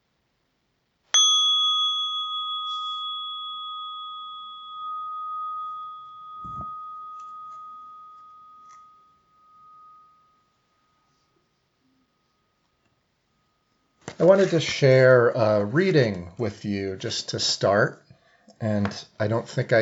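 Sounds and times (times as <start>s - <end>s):
meditation bell ringing: 1.2s - 14.0s
soft thump: 6.4s - 6.9s
speech: 14.2s - 18.0s, 18.6s - 19.8s.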